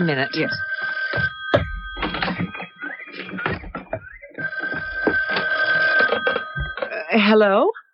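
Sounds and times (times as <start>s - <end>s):
speech: 0.0s - 1.3s, 7.2s - 7.8s
telephone bell ringing: 0.0s - 7.3s.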